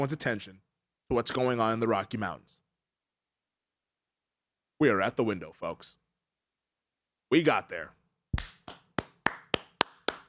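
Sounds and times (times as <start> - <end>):
speech: 0.0 - 2.6, 4.8 - 6.0, 7.3 - 8.8
person clapping hands: 8.4 - 10.2.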